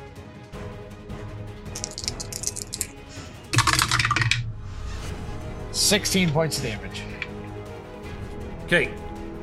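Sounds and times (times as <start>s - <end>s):
dice clattering onto a hard floor: 1.7s - 2.9s, 3.6s - 4.4s
speech: 5.8s - 7.1s, 8.7s - 9.0s.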